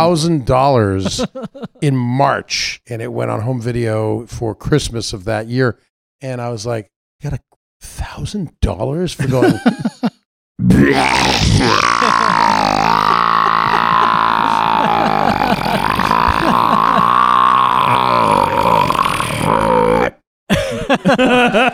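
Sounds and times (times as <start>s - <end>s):
speech: 0.0s - 9.9s, 10.6s - 12.2s, 20.9s - 21.7s
laughter: 1.0s - 1.8s, 9.2s - 10.2s, 11.6s - 17.3s, 20.5s - 21.7s
voiced sound: 1.0s - 2.1s, 10.6s - 20.1s
long loud throaty burp: 10.6s - 20.2s.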